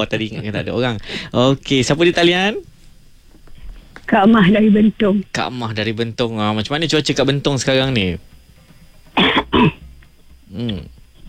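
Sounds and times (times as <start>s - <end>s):
speech: 0.0s - 2.7s, 4.1s - 8.3s, 9.2s - 9.8s, 10.5s - 11.0s
person clearing throat: 9.2s - 9.8s
person coughing: 9.2s - 9.8s.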